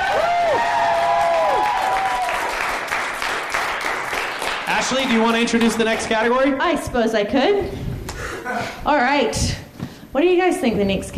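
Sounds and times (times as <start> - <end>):
cheers and whistles: 0.0 - 2.5
small crowd applause: 0.0 - 6.1
speech: 4.8 - 7.9, 8.5 - 11.1.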